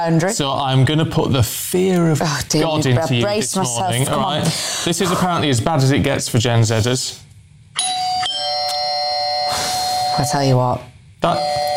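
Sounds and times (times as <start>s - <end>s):
speech: 0.0s - 7.3s, 10.2s - 11.6s
doorbell chime ringing: 7.8s - 10.4s, 11.3s - 11.7s.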